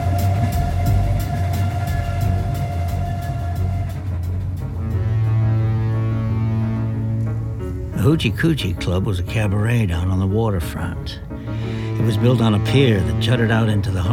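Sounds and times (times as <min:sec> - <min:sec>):
train rolling along the rails: 0:00.0 - 0:10.2, 0:10.8 - 0:14.1
speech: 0:08.1 - 0:11.3, 0:12.0 - 0:14.1.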